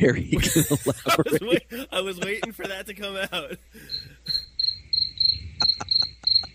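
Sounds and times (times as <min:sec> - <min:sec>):
speech: 0:00.0 - 0:04.4
laughter: 0:00.4 - 0:04.4, 0:05.6 - 0:06.5
crickets chirping: 0:01.0 - 0:06.5.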